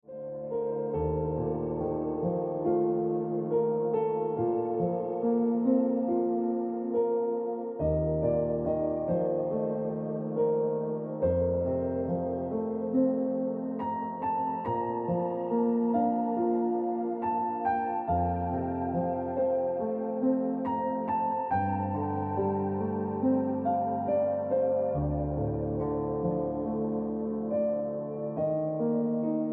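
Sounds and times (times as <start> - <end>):
piano music on a tonic note: 0.0 - 29.5.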